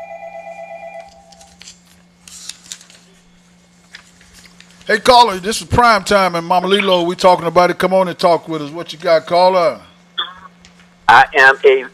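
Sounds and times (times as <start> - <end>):
telephone ringing with an incoming call: 0.0 - 1.4
speech: 4.9 - 9.9, 11.1 - 11.9.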